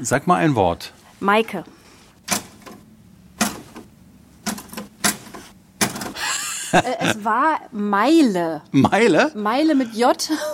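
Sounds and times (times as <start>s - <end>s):
speech: 0.0s - 2.4s, 6.7s - 10.5s
old mechanical Erika typewriter clacking: 3.4s - 6.2s
laughter: 6.2s - 7.3s.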